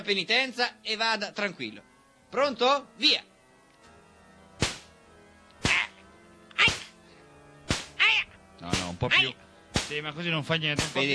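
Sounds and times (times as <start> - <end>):
speech: 0.0 - 3.3, 8.6 - 11.1
riding crop whipping strikes: 4.6 - 5.0, 7.7 - 11.1.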